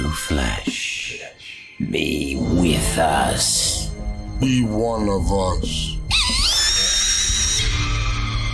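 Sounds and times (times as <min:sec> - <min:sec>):
speech: 0:00.1 - 0:03.8, 0:04.4 - 0:05.9
loud shrill cartoon scream: 0:06.1 - 0:08.5.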